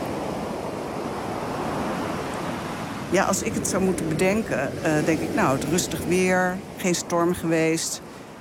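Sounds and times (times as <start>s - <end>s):
calm sea surf washing ashore in settled weather: 0.0s - 8.3s
speech: 3.1s - 8.2s.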